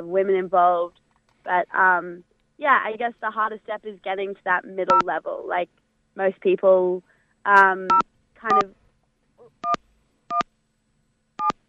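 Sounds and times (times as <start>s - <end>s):
speech: 0.0s - 8.8s
telephone keypad dialing tones: 7.9s - 8.7s, 9.6s - 10.4s, 11.4s - 11.6s.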